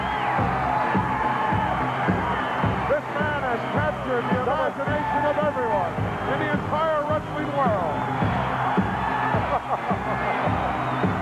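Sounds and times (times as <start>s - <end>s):
whistles: 0.0s - 0.4s, 10.8s - 11.1s
large arena crowd cheering: 0.0s - 11.1s.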